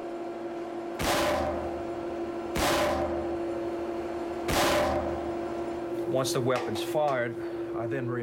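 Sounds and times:
steady mechanical hum: 0:00.0 - 0:08.2
gunshots fired into water tank in an enclosed space: 0:01.0 - 0:01.8, 0:02.6 - 0:03.4, 0:04.5 - 0:05.2
person talking: 0:06.1 - 0:08.2.

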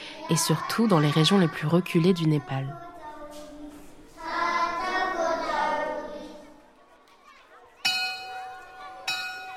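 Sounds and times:
children chattering at a school in the Sindhupalchok district of Nepal: 0:00.0 - 0:09.5
speech: 0:00.3 - 0:02.9
school bell ringing at a school in the Sindhupalchok district of Nepal: 0:07.8 - 0:09.5.

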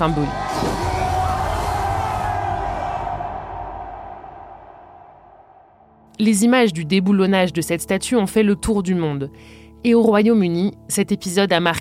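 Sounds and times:
speech: 0:00.0 - 0:00.4, 0:06.2 - 0:11.7
large crowd of protesters shouting and cheering as statue topples: 0:00.0 - 0:06.0.

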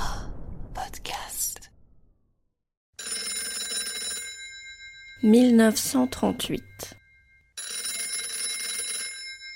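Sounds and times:
telephone bell ringing: 0:03.0 - 0:09.5
speech: 0:05.2 - 0:07.0.

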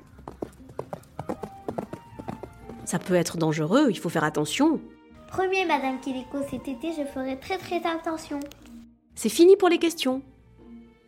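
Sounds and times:
galloping horse hoofbeats: 0:00.0 - 0:03.4
speech: 0:02.9 - 0:08.6, 0:09.2 - 0:10.3.

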